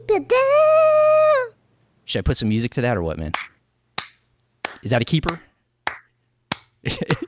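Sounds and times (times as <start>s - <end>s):
speech: 0.1s - 0.7s, 2.1s - 3.5s, 4.8s - 5.5s, 6.8s - 7.2s
slow hand clapping: 3.3s - 6.8s.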